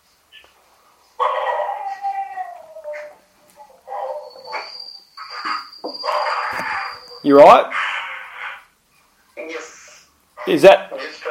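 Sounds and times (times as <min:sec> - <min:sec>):
dogs howling: 0:01.2 - 0:08.2
speech: 0:07.2 - 0:07.8, 0:10.5 - 0:11.2.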